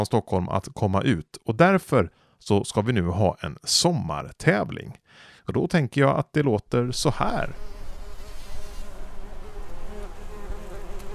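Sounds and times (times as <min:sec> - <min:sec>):
speech: 0:00.0 - 0:07.7
flies buzzing around a rose bush: 0:07.2 - 0:11.1.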